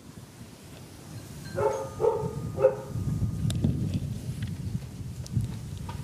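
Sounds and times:
wind noise on a windy day: 0.0 - 6.0
doorbell ringing: 1.4 - 3.4
dog barking at the door of a house: 1.6 - 2.9.

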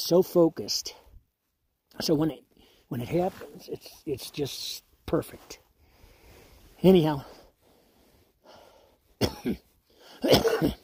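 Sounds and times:
speech: 0.0 - 1.0, 2.0 - 5.6, 6.8 - 7.4, 9.2 - 10.8
faint breath: 5.8 - 9.2, 9.8 - 10.2
climber's hoarse cough from breathing frigid polar air on a high-altitude summit: 9.2 - 10.8.

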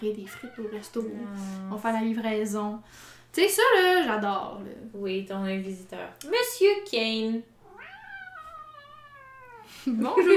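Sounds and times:
speech: 0.0 - 7.5, 9.7 - 10.3
cat meowing: 0.2 - 1.2, 7.6 - 9.7.

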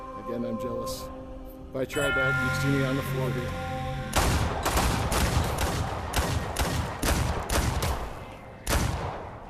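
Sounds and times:
speech: 0.3 - 3.8
gunshots in a VR shooting video game: 4.1 - 9.4.

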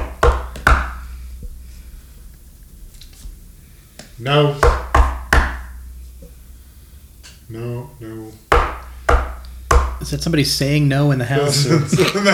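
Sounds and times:
knocking on a door: 0.0 - 1.0, 4.6 - 5.7, 8.5 - 10.0
speech: 4.2 - 4.8, 10.1 - 12.3
laughter: 11.3 - 12.3.

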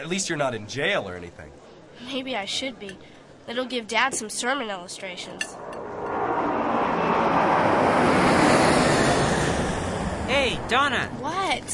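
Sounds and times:
speech: 0.0 - 5.8, 10.3 - 11.7
airplane roaring overhead: 5.2 - 11.2.

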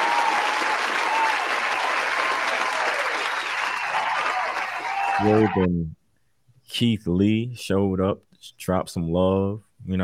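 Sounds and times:
sustained round of applause from a crowd: 0.0 - 5.7
speech: 5.2 - 6.0, 6.7 - 10.0.

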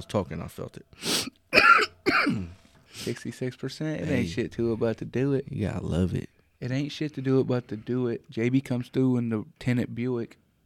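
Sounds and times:
speech: 0.0 - 1.4, 2.2 - 10.4
person coughing after holding in a smoke hit: 1.1 - 2.6.

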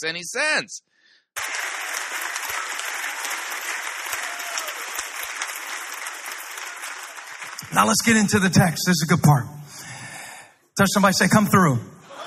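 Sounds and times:
speech: 0.0 - 1.6, 7.7 - 9.8, 10.8 - 12.0
audience clapping and applauding: 1.4 - 8.9.

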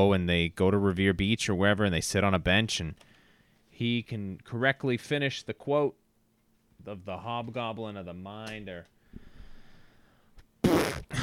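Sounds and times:
speech: 0.0 - 3.1, 3.8 - 6.0, 6.8 - 9.0
voice imitating a fart with a blown raspberry: 10.6 - 11.2.

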